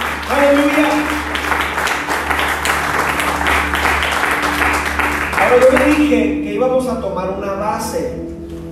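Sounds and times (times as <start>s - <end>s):
large crowd applauding loudly: 0.0s - 6.3s
speech: 5.6s - 8.3s.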